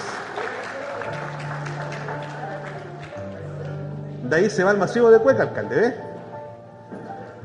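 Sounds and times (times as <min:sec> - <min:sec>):
crowd applause: 0:00.0 - 0:03.8
speech: 0:04.3 - 0:06.1.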